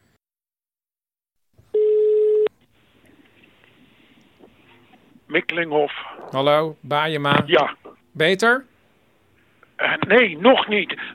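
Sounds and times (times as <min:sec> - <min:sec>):
steady electronic telephone tone: 0:01.7 - 0:02.5
speech: 0:05.3 - 0:08.7, 0:09.8 - 0:11.1.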